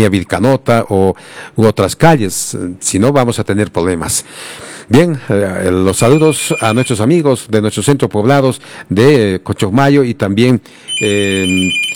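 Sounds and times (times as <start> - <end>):
speech: 0.0 - 11.9
telephone ringing for an incoming call: 6.0 - 7.0, 10.9 - 11.9.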